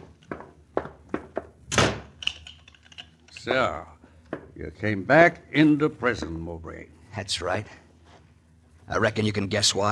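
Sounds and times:
closet door in a prison slamming shut: 0:01.7 - 0:02.1
speech: 0:03.4 - 0:04.0, 0:04.6 - 0:07.8, 0:08.9 - 0:09.9.

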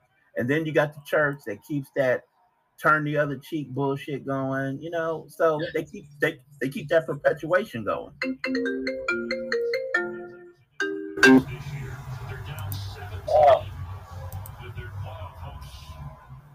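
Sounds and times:
voices: 0:00.0 - 0:08.1, 0:11.2 - 0:16.5
speech: 0:00.4 - 0:09.6, 0:11.2 - 0:11.7
phone ringtone with chiming electronic notes: 0:08.2 - 0:11.6.

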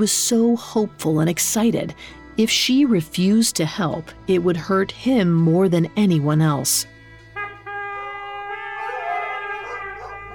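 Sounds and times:
speech: 0:00.0 - 0:07.0
pack of hunting hounds baying and howling: 0:08.7 - 0:10.3.

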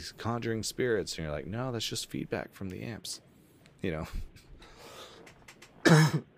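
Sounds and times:
speech: 0:00.0 - 0:04.4, 0:05.9 - 0:06.3
person coughing into the microphone: 0:05.8 - 0:06.3.

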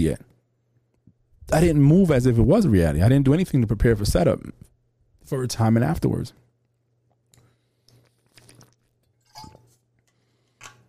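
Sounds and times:
speech: 0:00.0 - 0:00.3, 0:01.5 - 0:06.4
faint steady hum: 0:00.0 - 0:10.8
person drinking water: 0:07.2 - 0:09.2
soft gulps and wet swallows: 0:07.8 - 0:09.0.

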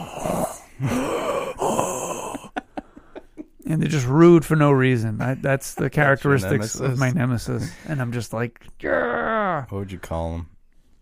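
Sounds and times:
voice imitating heavy mouth breathing: 0:00.0 - 0:03.5
laughter: 0:00.9 - 0:04.2, 0:05.0 - 0:08.1
speech: 0:03.7 - 0:10.6.

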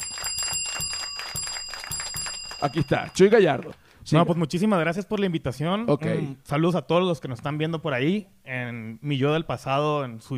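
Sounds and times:
bell ringing with bright metallic clanging: 0:00.0 - 0:03.6
speech: 0:02.6 - 0:10.3.

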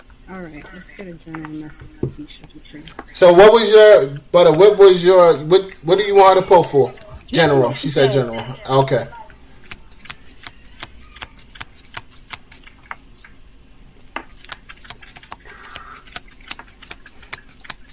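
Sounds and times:
speech: 0:00.3 - 0:09.2
playing cards being shuffled: 0:08.4 - 0:13.4, 0:14.0 - 0:17.9.

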